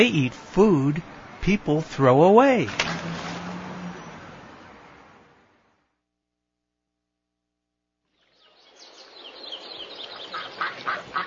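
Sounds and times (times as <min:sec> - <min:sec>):
speech: 0:00.0 - 0:02.9
flock of ducks quacking: 0:10.3 - 0:11.2
flock of geese honking: 0:10.3 - 0:11.2.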